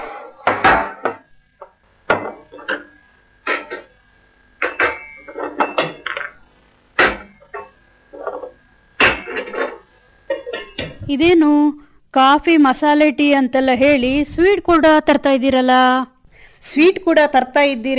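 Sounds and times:
kitchen utensils knocking and clinking while crushing ginger and cardamom for tea: 2.1 - 3.9, 4.6 - 6.4, 7.0 - 11.0
speech: 11.1 - 17.9.

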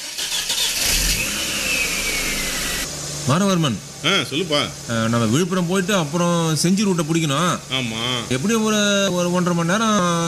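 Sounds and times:
car engine cranking, starting and revving: 0.0 - 3.6
speech: 3.2 - 10.2.

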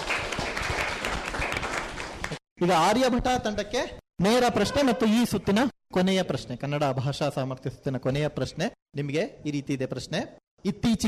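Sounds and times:
audience applause at a quiz competition: 0.0 - 2.4
speech: 2.6 - 11.0.

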